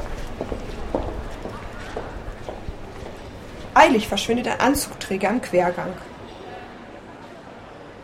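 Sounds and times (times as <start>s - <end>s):
heavy footsteps climbing stairs: 0.0s - 4.4s
faint murmur of voices: 0.0s - 8.0s
speech: 3.8s - 6.1s.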